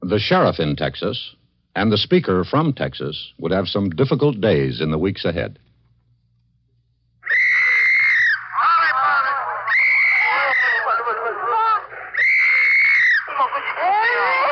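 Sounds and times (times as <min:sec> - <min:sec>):
speech: 0:00.1 - 0:05.6
infants sobbing and wailing during the fall of a city in Korea: 0:07.3 - 0:14.5.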